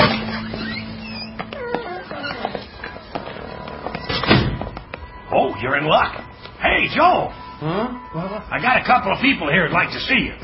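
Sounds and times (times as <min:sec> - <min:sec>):
door creaking open: 0:00.0 - 0:04.8
door thump as it swings wide: 0:04.1 - 0:04.8
speech: 0:05.6 - 0:10.4.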